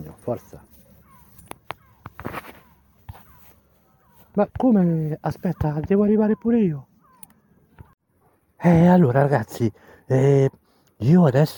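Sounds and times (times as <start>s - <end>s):
faint seagull cries: 0.0s - 8.0s
speech: 0.2s - 0.7s, 4.4s - 6.9s, 8.6s - 11.5s.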